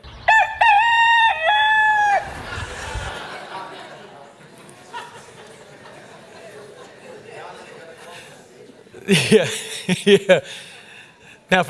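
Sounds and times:
call: 0.0s - 3.8s
rooster crowing: 0.3s - 3.1s
laughter: 2.0s - 11.2s
murmur: 2.0s - 11.6s
speech: 9.1s - 10.7s.

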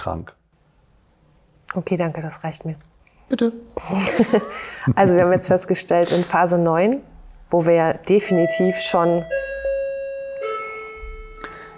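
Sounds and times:
speech: 0.0s - 0.4s, 1.7s - 9.5s
laughter: 3.8s - 5.8s
doorbell electronic chime: 8.2s - 11.7s.

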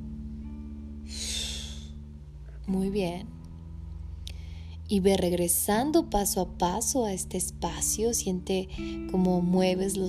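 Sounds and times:
steady low hum: 0.0s - 9.9s
deep breath in: 1.0s - 2.0s
forceful exhale of breath: 1.1s - 2.0s
speech: 2.7s - 3.4s, 4.9s - 10.0s.

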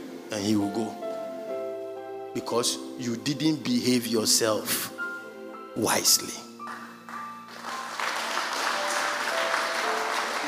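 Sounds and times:
speech: 0.3s - 1.0s, 2.3s - 5.0s, 5.8s - 6.5s
audience clapping: 6.6s - 10.4s.

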